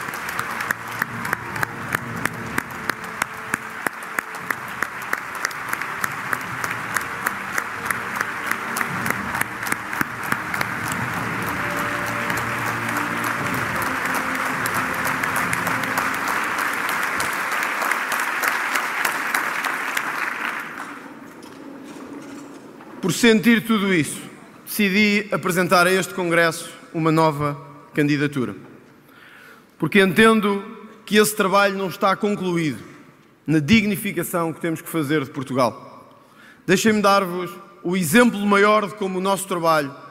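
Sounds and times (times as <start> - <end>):
large crowd applauding: 0.0 - 21.8
speech: 23.1 - 24.2, 24.8 - 28.6, 29.8 - 32.9, 33.5 - 35.8, 36.7 - 40.0.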